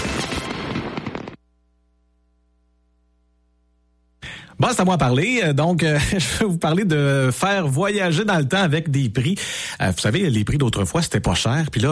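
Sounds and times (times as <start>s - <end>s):
dense volley of fireworks bursting and crackling: 0.0s - 1.4s
speech: 4.6s - 11.8s.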